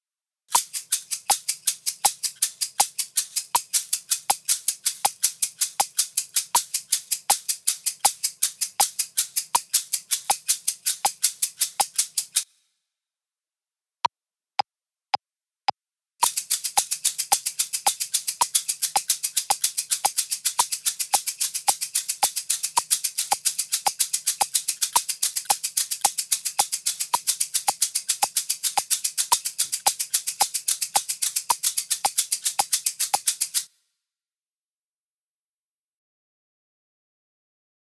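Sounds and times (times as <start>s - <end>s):
two shakers: 0.5s - 12.6s, 16.2s - 33.8s.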